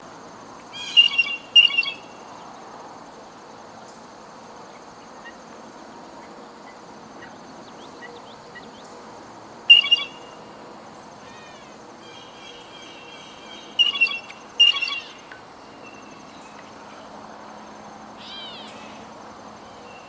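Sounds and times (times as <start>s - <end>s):
steady background hiss: 0.0s - 20.0s
blue jay Cyanocitta cristata calling: 0.7s - 2.2s, 9.7s - 10.5s, 11.2s - 17.1s, 18.2s - 20.0s.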